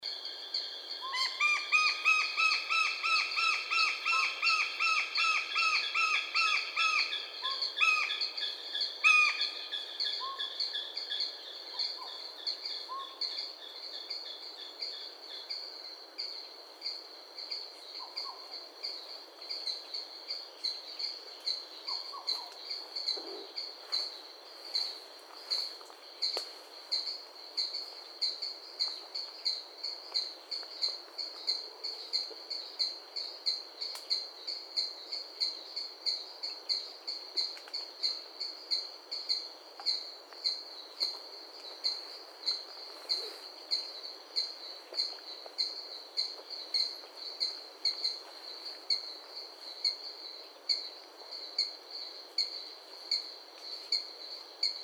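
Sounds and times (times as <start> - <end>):
bird song: 0.0 - 54.8.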